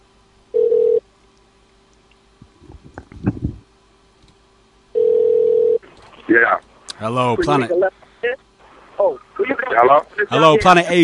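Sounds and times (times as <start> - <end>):
faint hum: 0.0 - 11.0
telephone line tone beeping: 0.6 - 1.0, 5.0 - 5.8
speech: 6.4 - 8.0, 9.8 - 11.0.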